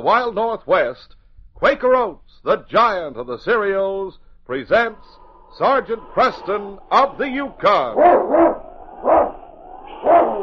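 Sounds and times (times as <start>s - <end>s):
speech: 0.0s - 9.4s
Husky sled dog barking: 8.0s - 9.4s, 10.0s - 10.4s.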